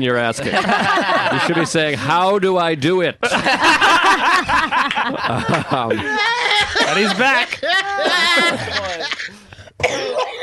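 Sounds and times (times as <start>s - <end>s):
speech: 0.0s - 9.1s
laughter: 0.3s - 2.1s, 3.2s - 10.4s
person coughing: 7.8s - 10.4s.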